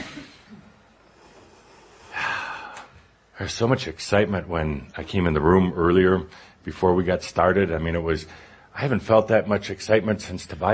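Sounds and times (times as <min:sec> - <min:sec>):
deep breath taken by someone breathing through a cold: 0:01.0 - 0:03.2, 0:08.3 - 0:08.7
speech: 0:03.4 - 0:10.7.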